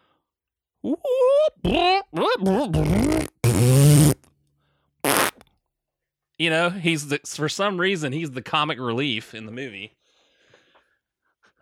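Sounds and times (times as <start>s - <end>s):
speech: 0.8s - 3.3s, 6.4s - 10.0s
voice imitating vaguely Italian-sounding fart noises: 1.6s - 4.3s, 5.1s - 5.4s.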